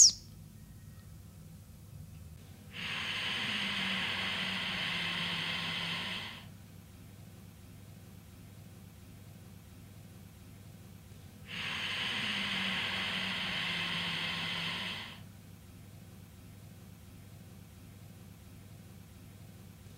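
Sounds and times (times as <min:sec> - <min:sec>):
slow deliberate airy breathing during a breath-awareness practice: 0:02.7 - 0:06.6, 0:11.5 - 0:15.3.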